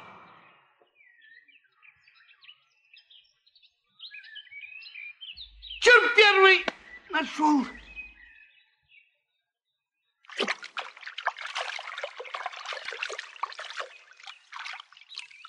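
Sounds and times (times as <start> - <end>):
speech: 6.3 - 7.8
splash of cage pulled out of water: 10.3 - 15.4
water pouring and dripping off cage lifted out of water: 10.3 - 15.4.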